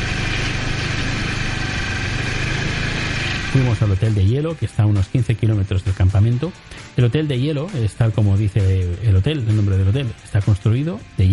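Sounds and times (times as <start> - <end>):
snowmobile engine idling: 0.0 - 4.3
speech: 3.6 - 11.3.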